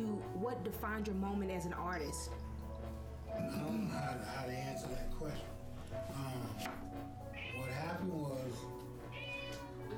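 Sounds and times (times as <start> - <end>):
speech: 0.0 - 2.5, 3.3 - 7.0, 7.6 - 8.8
cat meowing faintly: 7.3 - 8.1, 9.1 - 9.8.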